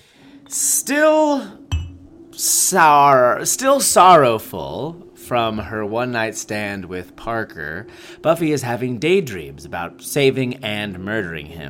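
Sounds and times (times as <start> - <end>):
speech: 0.5 - 1.6, 2.4 - 11.6
beer glasses clinking in a toast: 1.7 - 2.0.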